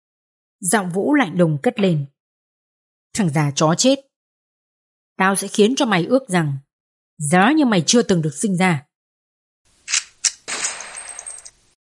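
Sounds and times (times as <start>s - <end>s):
speech: 0.6s - 2.1s, 3.1s - 4.1s, 5.2s - 6.6s, 7.2s - 8.9s
gunshot sound effect: 10.4s - 11.4s.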